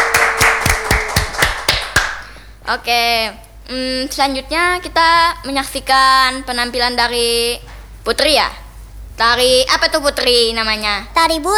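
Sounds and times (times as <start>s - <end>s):
audience clapping for a dance performance: 0.0s - 2.5s
speech: 2.7s - 8.6s, 9.2s - 11.5s.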